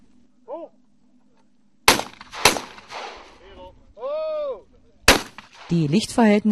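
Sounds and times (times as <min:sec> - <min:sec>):
shotgun blasts at a clay pigeon shooting range: 0:01.9 - 0:03.4, 0:05.1 - 0:06.0
speech: 0:05.7 - 0:06.5.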